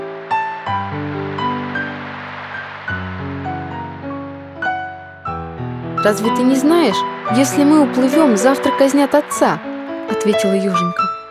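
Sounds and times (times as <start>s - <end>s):
ocean waves surging: 0.0s - 5.0s, 5.8s - 11.2s
sustained musical chords: 0.0s - 11.2s
speech: 6.0s - 11.0s.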